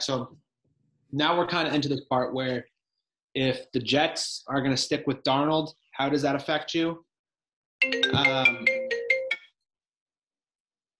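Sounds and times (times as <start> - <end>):
speech: 0.0 - 0.4, 1.1 - 2.7, 3.4 - 7.1, 7.8 - 8.8
mobile phone ringtone: 7.8 - 9.6.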